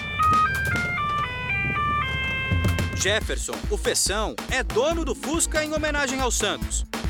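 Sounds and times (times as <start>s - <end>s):
musical car horn playing a football club anthem: 0.0s - 3.2s
faint street noise: 0.0s - 3.4s
low car engine rumble: 0.0s - 3.4s
speech: 3.0s - 7.0s.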